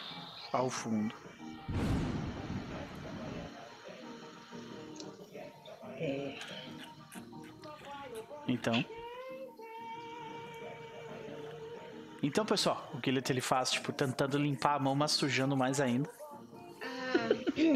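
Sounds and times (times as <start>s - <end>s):
speech: 0.5s - 2.1s, 8.5s - 9.1s, 12.2s - 16.2s, 17.6s - 17.7s
thunder rumbling: 1.7s - 3.5s.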